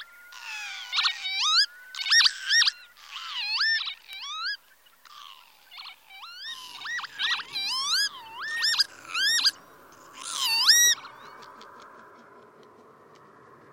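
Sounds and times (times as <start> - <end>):
northern lapwing calling: 0.0 - 12.9
low background rumble: 6.2 - 13.7.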